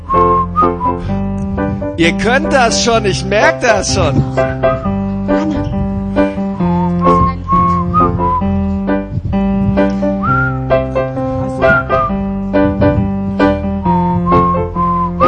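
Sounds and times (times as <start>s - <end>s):
audience whistling a melody together: 0.0s - 1.1s, 6.6s - 8.7s, 10.2s - 10.7s, 11.6s - 12.2s, 13.6s - 15.2s
steady rhythmic instrumental accompaniment: 0.0s - 15.2s
speech: 2.0s - 4.7s.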